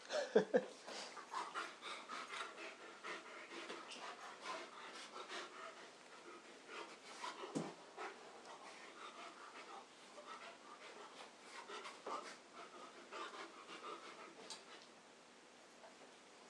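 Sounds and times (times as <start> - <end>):
dog panting: 0.9 - 14.9.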